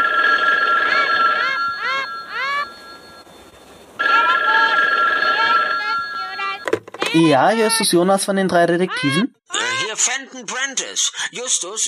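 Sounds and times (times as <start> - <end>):
telephone ringing: 0.0 - 7.8
speech: 7.2 - 9.4, 10.0 - 11.8.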